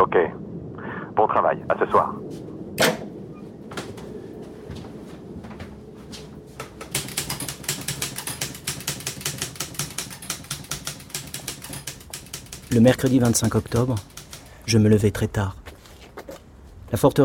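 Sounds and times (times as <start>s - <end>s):
speech: 0.0s - 0.4s, 1.2s - 3.0s, 12.7s - 14.1s, 14.7s - 15.6s, 16.9s - 17.2s
typewriter keys clacking while typing on carbon paper: 6.8s - 14.8s.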